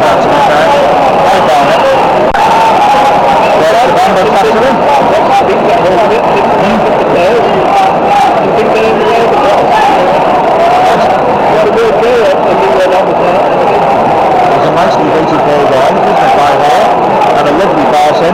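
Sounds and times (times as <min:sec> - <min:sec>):
large stadium crowd at a football match murmuring after a goal: 0:00.0 - 0:18.3.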